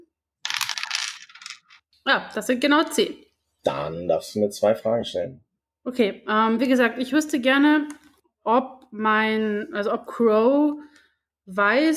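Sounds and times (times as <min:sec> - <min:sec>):
dice clattering and rattling across a hard surface: 0:00.4 - 0:01.8
speech: 0:02.0 - 0:11.9.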